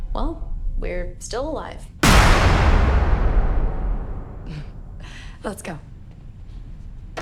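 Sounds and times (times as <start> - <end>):
speech: 0.1 - 3.0, 5.4 - 5.9
door being battered and broken: 2.1 - 5.3.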